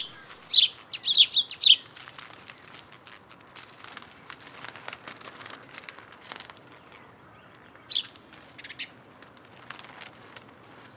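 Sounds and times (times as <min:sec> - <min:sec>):
house sparrow Passer domesticus chirping: 0:00.0 - 0:01.9, 0:06.7 - 0:09.0
rustling: 0:00.0 - 0:10.9.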